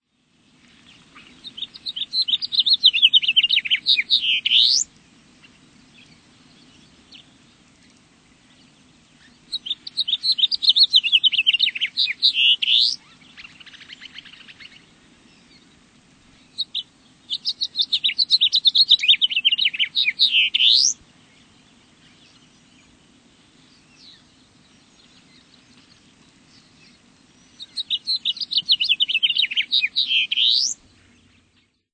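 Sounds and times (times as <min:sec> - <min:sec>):
House Finch calling: 0:00.9 - 0:06.2, 0:09.2 - 0:15.6, 0:16.4 - 0:21.0, 0:27.4 - 0:31.4.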